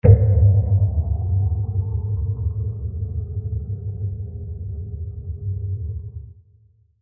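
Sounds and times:
low impact: 0:00.0 - 0:06.3.

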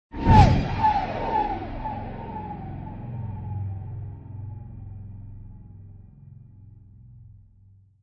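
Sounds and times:
alien whoosh for video editing: 0:00.1 - 0:04.7.

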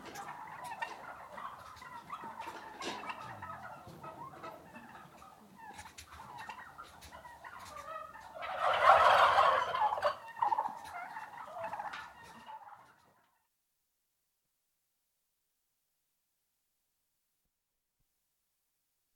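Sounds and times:
six-month-old male turkeys calling indoors, startled: 0:00.0 - 0:13.4.

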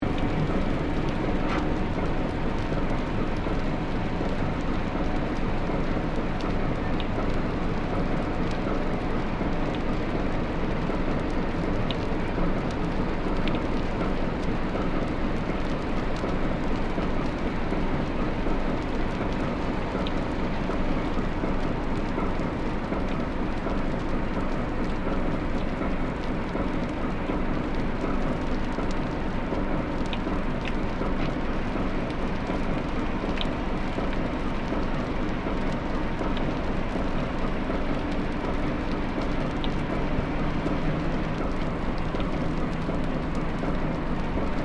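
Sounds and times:
Freshwater class ferry engine idling recorded submerged: 0:00.0 - 0:44.6.

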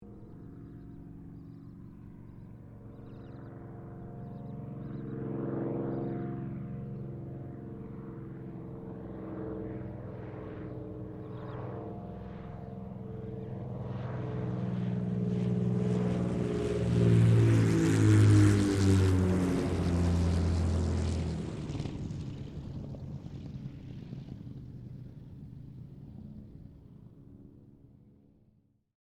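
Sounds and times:
Supermarine Spitfire Mk XVI aircraft landing: 0:00.0 - 0:28.6.

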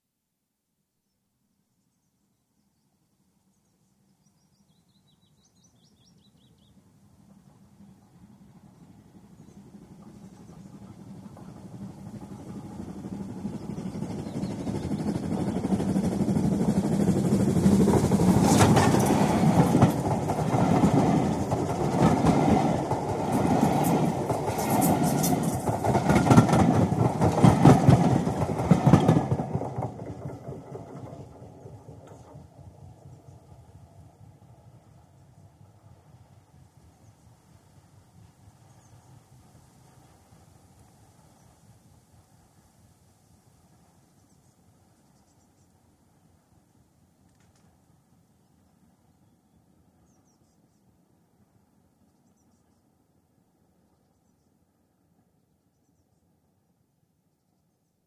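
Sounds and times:
steam train passing at high speed: 0:05.9 - 0:47.1.

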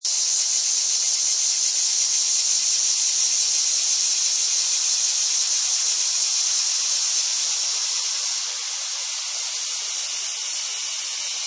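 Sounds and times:
cicadas buzzing: 0:00.0 - 0:11.4.

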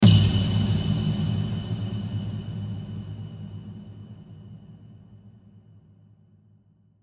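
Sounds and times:
drum hit jingle with reverb: 0:00.0 - 0:03.4.

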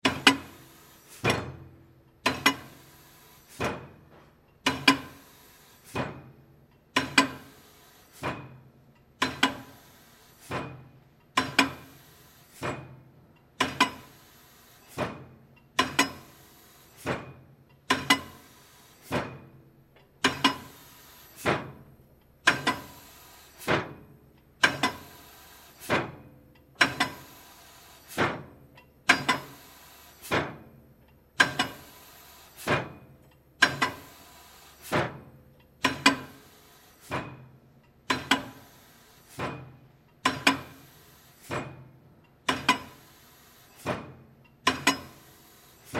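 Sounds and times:
metal bender pound stamper in industry: 0:00.0 - 0:02.9, 0:03.5 - 0:05.3, 0:05.9 - 0:09.8, 0:10.4 - 0:13.0, 0:13.6 - 0:14.3, 0:14.9 - 0:16.4, 0:17.0 - 0:19.6, 0:20.2 - 0:25.2, 0:25.8 - 0:27.4, 0:28.1 - 0:30.7, 0:31.4 - 0:43.2, 0:43.8 - 0:45.9.

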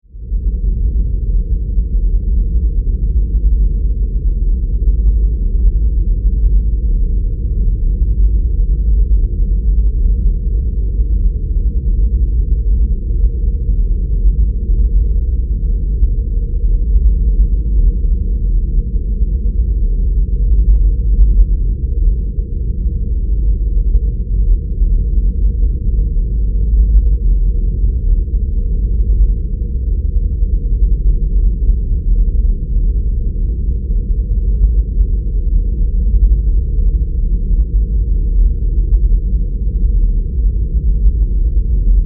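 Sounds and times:
deep rumbling sci-fi space drone: 0:00.0 - 0:42.0.

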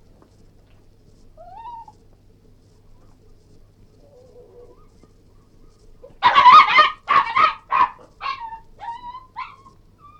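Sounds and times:
Cairn terrier barking, whining and yelping: 0:06.1 - 0:10.1.

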